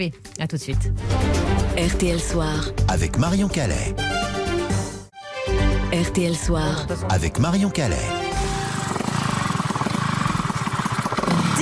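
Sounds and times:
speech: 0:00.0 - 0:04.3, 0:05.9 - 0:08.5
motorcycle engine revving: 0:07.9 - 0:11.6.

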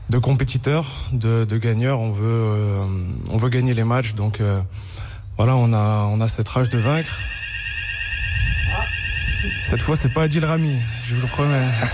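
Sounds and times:
speech: 0:00.1 - 0:07.4, 0:09.4 - 0:11.9
fire alarm ringing with a high-pitched tone: 0:06.6 - 0:11.9.

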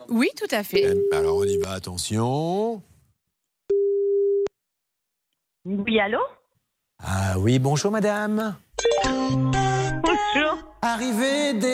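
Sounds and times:
speech: 0:00.1 - 0:02.9, 0:05.6 - 0:06.4, 0:07.0 - 0:09.6, 0:10.3 - 0:11.7
telephone ringing tone on an outgoing call: 0:00.8 - 0:01.7, 0:03.7 - 0:04.5.

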